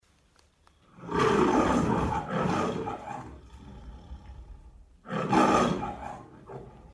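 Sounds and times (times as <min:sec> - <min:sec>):
lion roaring: 0:00.9 - 0:06.9.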